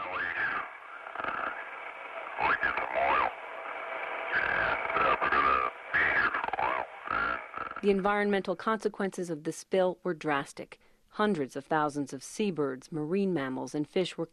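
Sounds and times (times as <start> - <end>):
garbled ship-to-shore radio call from an oil tanker captain: 0.0 - 8.4
speech: 7.8 - 14.3.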